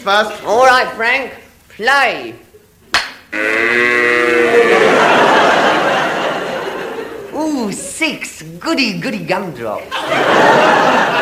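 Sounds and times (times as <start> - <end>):
speech: 0.0 - 2.5, 3.3 - 3.8, 7.5 - 11.2
cow mooing: 3.3 - 4.8
laughter: 4.3 - 7.9, 9.9 - 11.2.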